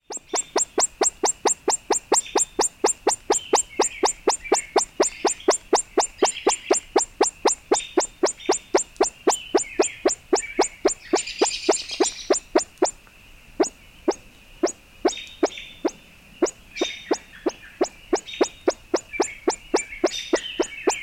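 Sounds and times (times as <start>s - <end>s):
ruffed grouse quirts: 0.0s - 13.0s, 13.6s - 21.0s.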